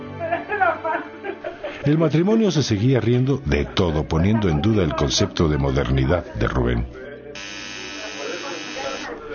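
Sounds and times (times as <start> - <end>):
laughter: 0.2 - 1.9
speech: 1.9 - 7.1
electric doorbell buzzing: 7.4 - 9.2.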